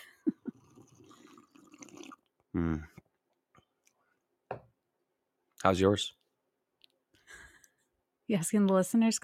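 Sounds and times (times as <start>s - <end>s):
slurping hot coffee from a cup: 0.5s - 2.3s
speech: 2.6s - 2.9s, 5.6s - 6.2s, 8.3s - 9.2s.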